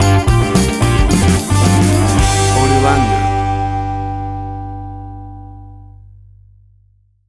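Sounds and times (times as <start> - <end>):
bluesy funk riffing stinger: 0.0 - 5.1.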